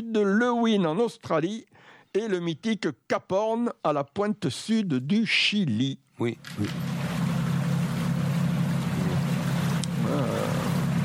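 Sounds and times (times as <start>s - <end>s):
speech: 0.1s - 6.9s
boat engine droning: 6.4s - 11.0s.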